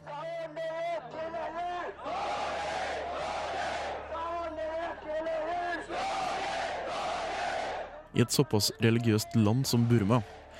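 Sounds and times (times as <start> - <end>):
crowd of Buddhist monks shouting slogans in unison at a protest: 1.1 - 8.0
speech: 8.2 - 10.4.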